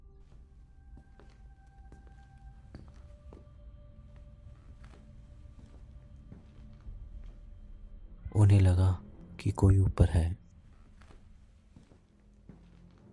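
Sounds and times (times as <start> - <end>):
footsteps walking: 0.2 - 7.7, 10.6 - 13.1
speech: 8.4 - 10.4.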